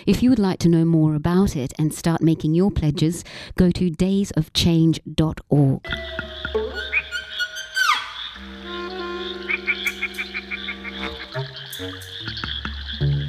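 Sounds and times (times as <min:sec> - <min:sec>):
speech: 0:00.0 - 0:07.0
chorus of frogs croaking: 0:05.9 - 0:13.2.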